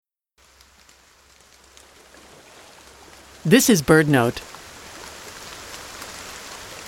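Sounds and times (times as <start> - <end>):
heavy rain pouring on garden plants near a river in Oregon's Cascade Mountains: 0.4 - 6.8
speech: 3.4 - 4.5.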